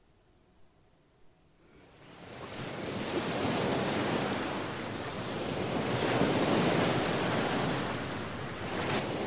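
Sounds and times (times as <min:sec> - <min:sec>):
wind: 0:00.0 - 0:09.2
sea waves breaking on shore: 0:01.7 - 0:09.2.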